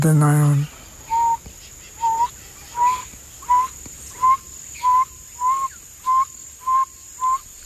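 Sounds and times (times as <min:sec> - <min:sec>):
speech: 0:00.0 - 0:00.7
night insects humming: 0:00.0 - 0:07.6
owl hooting at night: 0:01.0 - 0:07.6.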